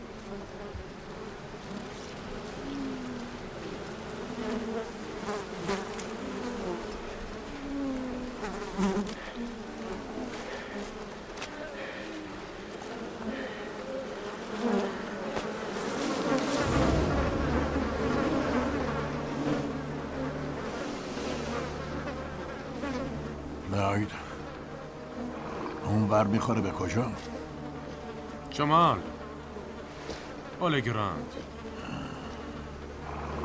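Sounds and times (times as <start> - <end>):
bees buzzing: 0.0 - 33.4
deep rumble: 16.6 - 22.3
speech: 26.2 - 27.4, 28.6 - 29.1, 30.6 - 31.5.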